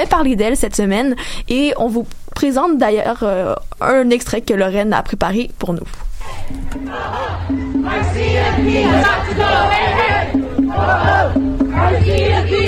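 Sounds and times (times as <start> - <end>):
speech: 0.0 - 12.6
large protest crowd chanting at a demonstration in Vancouver: 6.2 - 12.6.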